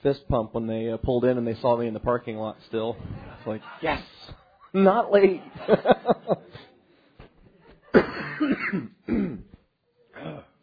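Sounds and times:
speech: 0.0s - 6.7s, 7.9s - 9.2s
laughter: 4.2s - 8.2s
person clearing throat: 7.9s - 10.6s
person coughing with rough hacking coughs: 7.9s - 10.6s.

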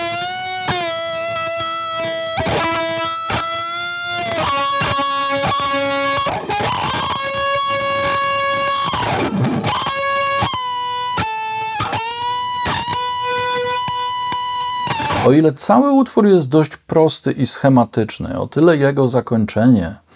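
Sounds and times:
overdriven electric guitar through Orange amplifier emulation plug-ins playing detuned notes: 0.0s - 15.4s
speech: 15.3s - 20.0s.

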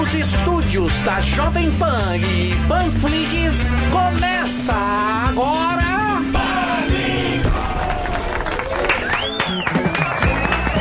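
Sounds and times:
speech: 0.1s - 6.5s
large audience cheering and shouting: 6.2s - 10.7s
large audience clapping: 7.4s - 10.7s
rising and falling whistle-like tone: 8.9s - 10.7s.

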